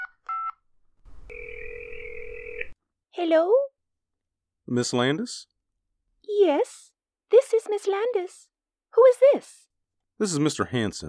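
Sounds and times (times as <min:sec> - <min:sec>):
house phone dialing beeps: 0:00.0 - 0:02.8
phone line hiss: 0:01.1 - 0:02.8
speech: 0:03.2 - 0:03.6, 0:04.7 - 0:05.5, 0:06.3 - 0:11.0.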